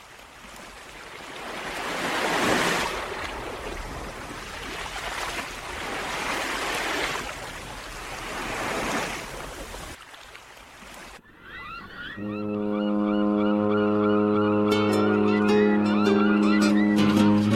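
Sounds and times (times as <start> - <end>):
rush of sea-like noise: 0.0 - 12.3
faint warbling cries: 11.2 - 17.4
deep steady ship's horn blasting: 12.2 - 17.4.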